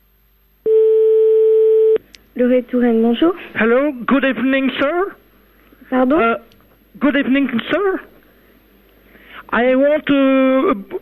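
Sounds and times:
telephone ringback tone on a French line: 0.7 - 2.0
speech: 2.4 - 5.2, 5.9 - 8.1, 9.5 - 11.0.

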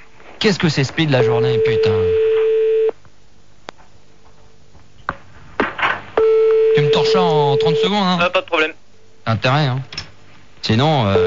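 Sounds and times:
speech: 0.4 - 2.3, 7.6 - 10.0, 10.6 - 11.2
steady electronic telephone tone as a radio host calls a listener: 1.2 - 2.9, 6.2 - 7.9.

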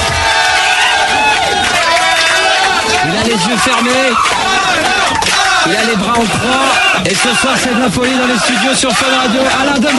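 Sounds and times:
studio crowd cheering and applauding in a standing ovation: 0.0 - 9.9
speech: 3.6 - 4.4, 5.7 - 9.9.

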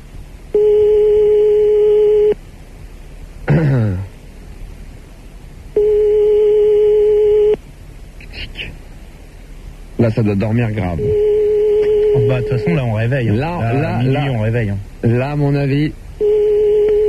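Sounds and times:
telephone ringback tone on the line: 0.6 - 2.4, 5.8 - 7.6, 11.0 - 12.8, 16.2 - 17.0
speech: 10.0 - 11.3, 12.1 - 16.0.

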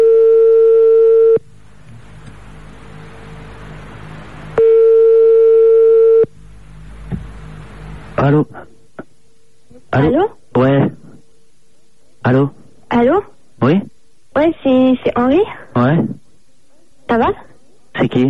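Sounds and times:
telephone ringback tone while placing a call: 0.0 - 1.4, 4.6 - 6.3
faint hiss: 1.0 - 18.2
speech: 8.3 - 8.5.

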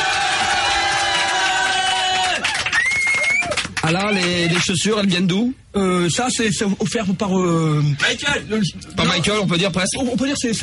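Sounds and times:
crowd cheering and applauding for a standing ovation: 0.0 - 4.7
speech: 3.9 - 10.6.

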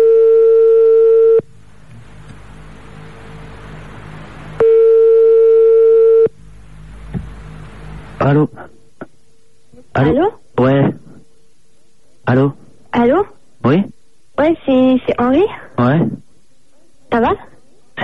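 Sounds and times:
telephone ringback tone: 0.0 - 1.4, 4.6 - 6.3
low hiss: 0.0 - 18.0
speech: 10.0 - 10.4, 15.1 - 16.2, 17.1 - 18.0.

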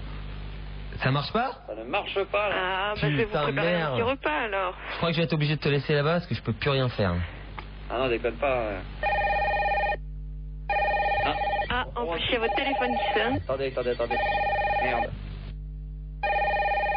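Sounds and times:
speech: 1.0 - 9.1, 12.2 - 15.3
telephone ringing: 9.0 - 10.0, 10.7 - 15.2, 16.2 - 16.9.

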